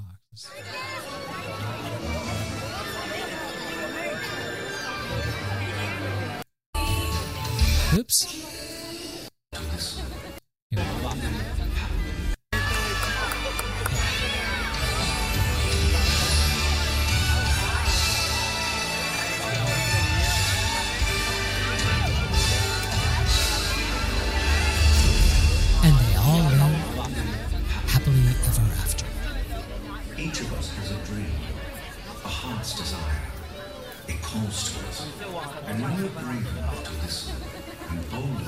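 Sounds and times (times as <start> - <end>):
speech: 0.4 - 1.2, 7.9 - 8.8
loud dense crowd chatter and cheering in played video: 0.4 - 38.4
people laughing in crowd: 12.6 - 15.3.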